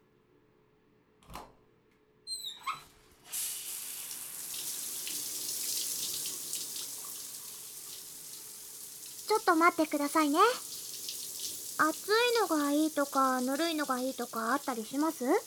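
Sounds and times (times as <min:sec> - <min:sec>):
water running from a tap to rinse: 0:03.3 - 0:15.4
speech: 0:09.3 - 0:10.7, 0:11.8 - 0:15.4.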